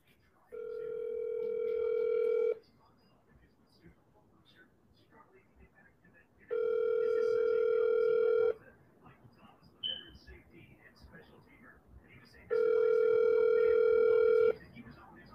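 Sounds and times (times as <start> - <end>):
phone ringback tone over a speakerphone: 0.6 - 2.6, 6.5 - 8.6, 12.5 - 14.6.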